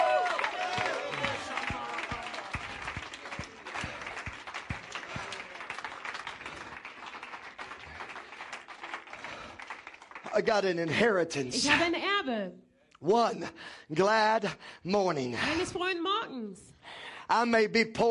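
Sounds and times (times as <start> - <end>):
church audience shouting with excited voices: 0.0 - 2.6
church audience clapping hands: 0.0 - 11.5
speech: 10.4 - 16.7, 17.3 - 18.1.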